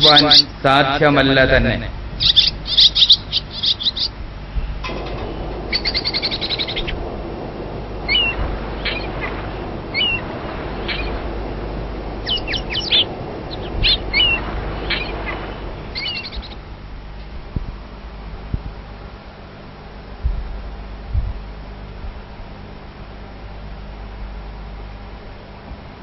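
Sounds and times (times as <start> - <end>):
speech: 0.0 - 2.9
birds chirping: 0.0 - 17.3
hiss: 0.0 - 26.0
pigeon calling with low hooting coos: 5.7 - 7.0, 8.0 - 11.3, 12.2 - 16.6.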